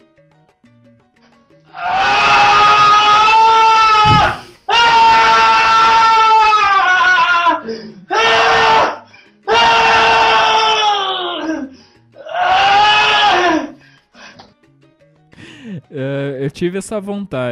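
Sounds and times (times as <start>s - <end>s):
speech: 1.7s - 2.0s, 16.6s - 17.5s
person screaming in frustration: 1.7s - 13.8s.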